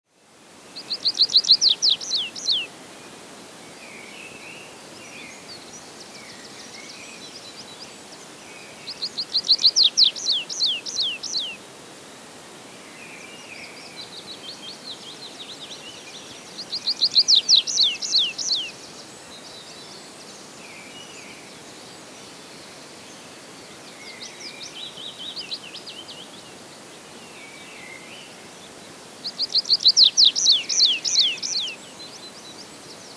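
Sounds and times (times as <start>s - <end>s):
tree pipit singing: 0.8s - 2.7s, 4.0s - 11.6s, 13.0s - 21.7s, 27.3s - 33.1s.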